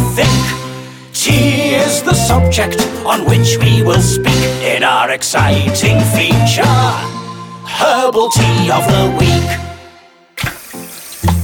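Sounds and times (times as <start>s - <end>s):
speech: 0.2s - 0.6s, 1.2s - 9.7s
tap water running into a kettle: 10.4s - 11.4s.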